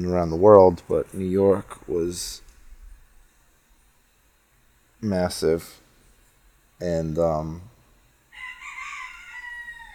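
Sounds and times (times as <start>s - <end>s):
speech: 0.0s - 2.4s, 5.0s - 5.8s, 6.8s - 7.7s
rooster crowing: 8.3s - 9.9s.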